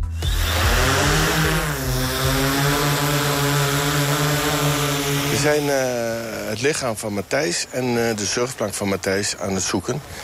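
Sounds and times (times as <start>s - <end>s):
search-and-rescue drone propellers buzzing while hovering: 0.0s - 7.2s
speech: 5.4s - 10.2s.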